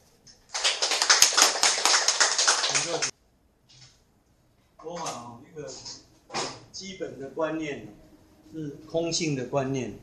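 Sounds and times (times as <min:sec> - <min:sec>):
audience applause with many hands clapping: 0:00.5 - 0:03.1
speech: 0:06.8 - 0:10.0.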